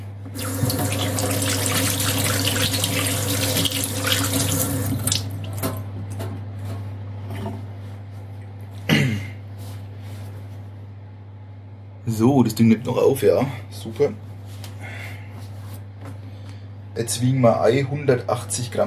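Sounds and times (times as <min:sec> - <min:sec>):
speech: 0:00.3 - 0:00.7, 0:12.2 - 0:14.3, 0:17.0 - 0:18.8
hands being washed under a running kitchen tap: 0:00.3 - 0:05.8.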